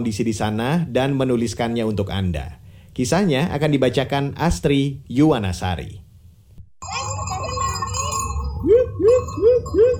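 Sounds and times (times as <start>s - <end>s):
speech: 0.0s - 6.0s
bell rung by a spring keeper in Malang East Java to call macaques: 6.8s - 9.9s
quick swooping tones: 6.8s - 9.9s.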